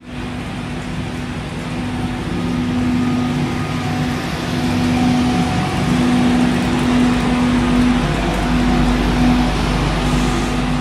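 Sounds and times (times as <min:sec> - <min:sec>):
Class 91 electric train: 0:00.0 - 0:10.8.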